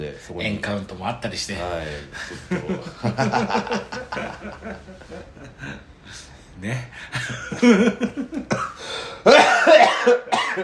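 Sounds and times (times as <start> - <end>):
speech: 0.0 - 10.6
laughter: 2.1 - 5.8, 7.1 - 8.7
harsh throaty coughs in a coughing fit: 8.5 - 10.6.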